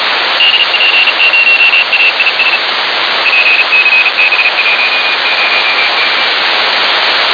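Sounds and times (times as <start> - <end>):
CW signal received from AISSAT-2 satellite: 0.0 - 6.3.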